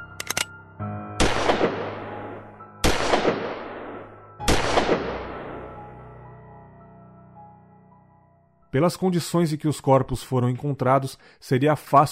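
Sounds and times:
quick metallic clicks: 0.0 - 0.5
loud gunshots: 1.2 - 2.0, 2.8 - 3.8, 4.5 - 5.4
speech: 8.7 - 12.1.

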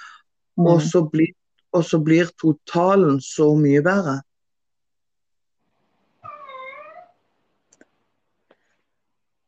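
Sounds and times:
speech: 0.6 - 4.3
cat meowing: 6.2 - 7.2.

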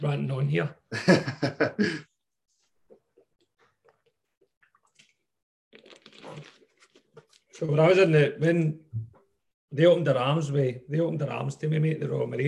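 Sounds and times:
speech: 0.0 - 2.1, 7.6 - 8.8, 9.7 - 12.4
laughter: 0.9 - 2.0
person taking a quick drink of water: 2.6 - 7.6.

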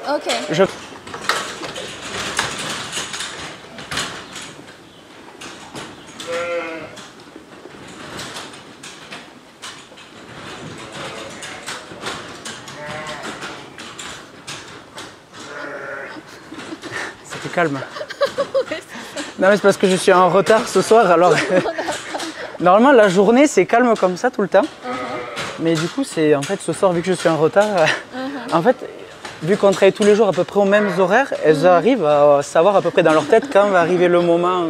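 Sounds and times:
speech: 0.1 - 0.9, 17.6 - 18.0, 19.4 - 21.8, 22.6 - 24.9, 25.6 - 34.6
clatter of ewes feeding and moving at feed conveyors: 0.1 - 34.6
large flock of ewes bleating at feeding: 15.5 - 16.2, 24.8 - 25.6
laughter: 16.2 - 19.4, 21.0 - 22.6, 27.8 - 28.5, 32.8 - 34.0.

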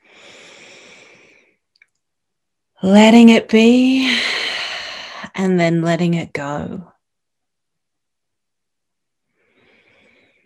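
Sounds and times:
deep breath drawn in during a breathwork session: 0.0 - 1.3, 4.0 - 5.3
speech: 2.8 - 4.4, 5.4 - 6.9.

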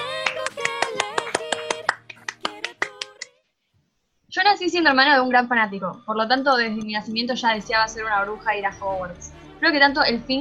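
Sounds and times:
scattered applause: 0.0 - 3.3
speech: 4.6 - 10.4.

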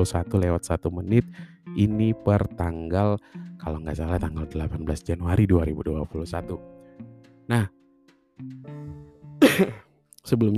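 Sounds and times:
speech: 0.0 - 6.7, 7.5 - 7.8, 8.4 - 8.7, 9.6 - 10.5
single loud cough: 9.4 - 9.8.

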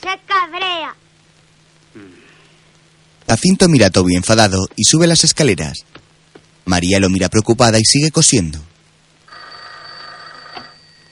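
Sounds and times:
speech: 0.0 - 1.0, 2.0 - 2.2, 3.3 - 6.0, 6.6 - 8.7
home telephone bell ringing: 9.3 - 11.1.

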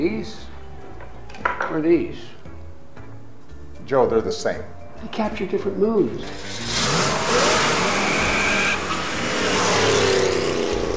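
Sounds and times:
speech: 0.0 - 0.5, 1.7 - 2.4, 3.9 - 7.0
car engine revving and accelerating while driven hard: 6.3 - 10.9
faint tire squeal: 7.6 - 10.0.

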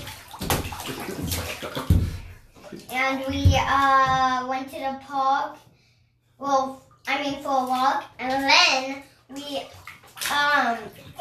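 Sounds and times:
child splashing water in a bathtub: 0.0 - 5.6, 6.4 - 11.1
speech: 1.1 - 1.9, 2.7 - 5.7, 6.4 - 11.1.

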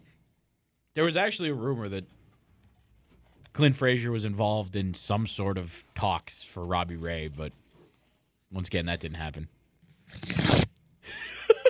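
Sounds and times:
speech: 1.0 - 2.2, 3.6 - 7.6, 8.5 - 10.5
paper being torn in half: 10.0 - 10.7.

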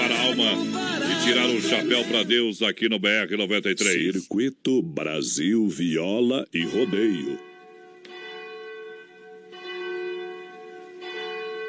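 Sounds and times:
church bell of Our Lady of Aparecida ringing: 0.0 - 0.6, 6.6 - 11.6
speech: 0.2 - 7.5.

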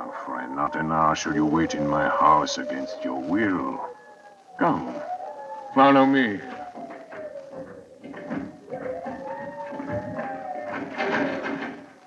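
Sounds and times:
bolted locked wooden door creaking against its lock: 0.5 - 12.0
speech: 0.6 - 3.9, 4.6 - 5.1, 5.8 - 6.6
bolted door rattling knocks: 5.0 - 12.0.

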